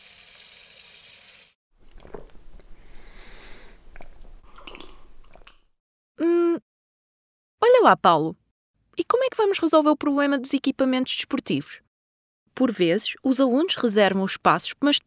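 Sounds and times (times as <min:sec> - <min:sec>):
running water hissing from a drinking fountain: 0:00.0 - 0:01.6
wet slurping and gulping of drinking water: 0:02.7 - 0:05.6
speech: 0:07.8 - 0:08.4, 0:09.0 - 0:11.8, 0:12.6 - 0:15.0.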